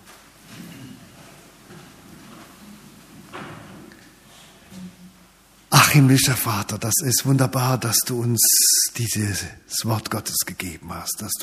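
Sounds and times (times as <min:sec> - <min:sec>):
church congregation rising from seats with rustling bodies and clothing: 0:00.0 - 0:05.0
speech: 0:06.0 - 0:11.4.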